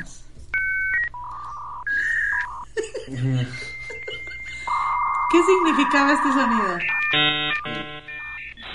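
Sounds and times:
dial-up modem dialing tones: 0.6s - 2.6s, 4.6s - 8.7s
laughter: 2.6s - 4.8s
speech: 3.1s - 3.7s, 5.3s - 7.4s.

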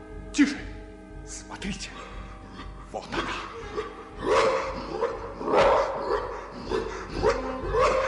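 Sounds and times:
speech: 0.4s - 0.6s, 1.6s - 2.1s, 2.9s - 3.4s
large dog barking: 3.7s - 8.0s.

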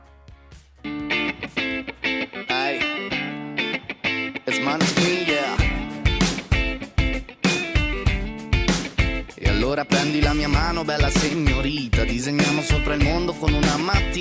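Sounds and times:
dense guitars: 0.0s - 14.1s
rock song by a rock band playing: 0.0s - 14.1s
person singing: 2.3s - 3.6s, 4.4s - 6.2s, 9.3s - 14.1s
driving drumbeat: 4.8s - 14.1s.

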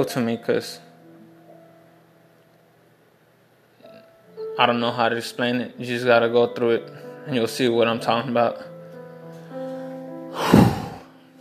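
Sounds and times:
speech: 0.0s - 0.9s, 4.6s - 8.7s
faint steady hum: 0.0s - 10.3s
heavy breathing as a person catches their breath: 9.6s - 11.3s.

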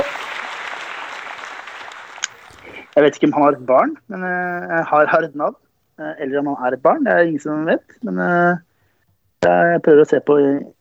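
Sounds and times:
crowd applauding: 0.0s - 3.4s
speech: 3.0s - 8.7s, 9.4s - 10.8s.

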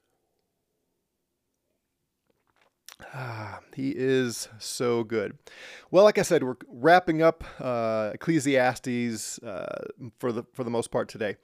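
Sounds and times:
person sipping coffee: 2.3s - 3.2s
speech: 3.0s - 11.4s.

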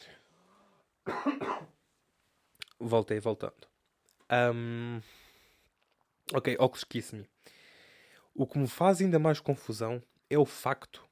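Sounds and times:
person coughing: 1.0s - 1.8s
speech: 2.8s - 3.7s, 4.3s - 5.2s, 6.3s - 7.6s, 8.4s - 11.0s.

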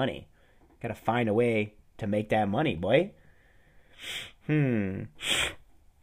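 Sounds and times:
speech: 0.0s - 3.2s, 4.0s - 5.6s
person sniffling: 3.8s - 5.7s
person groaning: 4.5s - 5.2s.

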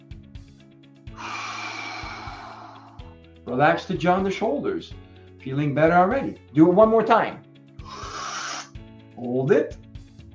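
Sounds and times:
deep breathy inhalation during a relaxation breathing exercise: 1.1s - 3.2s, 7.8s - 8.8s
speech: 3.4s - 7.4s, 9.2s - 9.8s.

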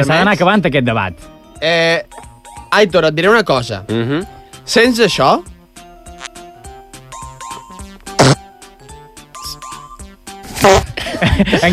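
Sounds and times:
speech: 0.0s - 5.5s, 11.4s - 11.7s
bouncy plinking musical backing: 0.0s - 11.7s
loud raspy fart sound effects: 6.1s - 6.5s, 7.7s - 8.6s, 9.3s - 11.0s
laughter: 10.8s - 11.7s.

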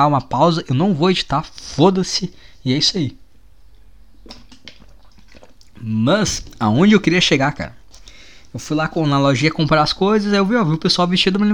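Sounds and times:
speech: 0.0s - 3.2s, 5.8s - 7.8s, 8.5s - 11.5s
low steady hum: 0.0s - 11.5s
person sipping coffee or water: 4.2s - 6.6s.

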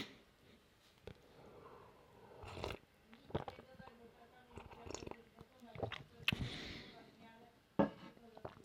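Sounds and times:
person sipping coffee: 1.0s - 3.7s, 4.6s - 6.7s.

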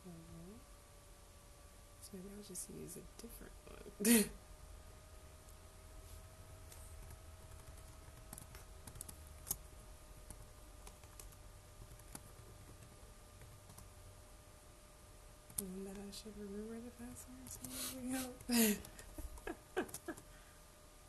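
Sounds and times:
faint hiss: 0.0s - 21.0s
low electrical hum: 0.0s - 21.0s
speech: 2.1s - 4.5s, 16.2s - 19.0s
computer mouse clicking: 6.7s - 9.6s, 10.2s - 13.9s.

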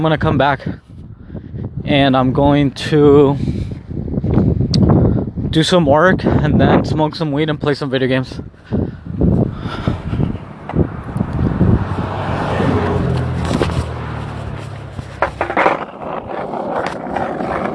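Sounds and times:
speech: 0.0s - 0.8s, 1.8s - 3.6s, 5.5s - 8.8s
gusty wind noise on the microphone: 0.0s - 17.7s
skateboard rolling rumble: 9.2s - 17.7s
skateboard clacks: 15.1s - 17.7s.

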